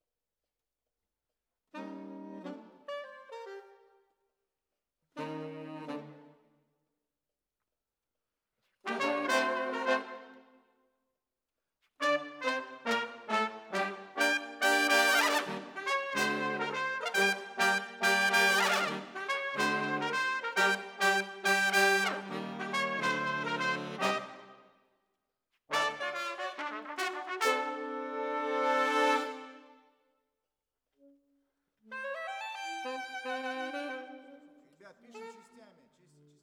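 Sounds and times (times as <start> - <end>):
brass: 1.8 - 3.8, 5.2 - 6.4, 8.8 - 10.6, 11.9 - 24.7, 25.7 - 29.9, 31.9 - 35.7.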